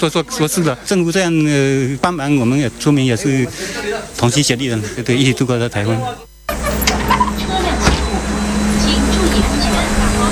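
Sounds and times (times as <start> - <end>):
speech: 0.0 - 6.3
faint indistinct voices: 2.9 - 10.3
evacuation bus engine rumbling: 6.5 - 10.3.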